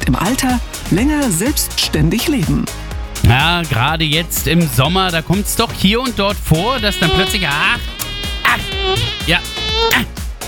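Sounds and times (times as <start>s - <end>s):
speech: 0.1s - 10.2s
mosquito buzzing: 4.8s - 10.2s.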